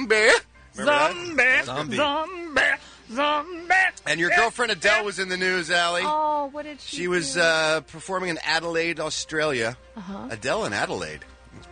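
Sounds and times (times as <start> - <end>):
speech: 0.1 - 11.6
voice imitating a female singer's yodel-like vocal break: 0.8 - 5.1.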